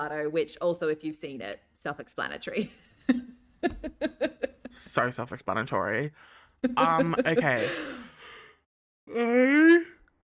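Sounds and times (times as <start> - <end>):
speech: 0.0 - 8.0, 9.1 - 9.9
laughter: 3.1 - 4.8, 6.6 - 8.1
person yawning: 9.1 - 10.1.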